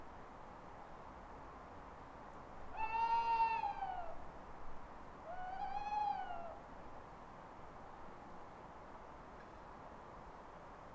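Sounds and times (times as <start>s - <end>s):
owl wailing: 2.8s - 4.2s, 5.3s - 6.6s.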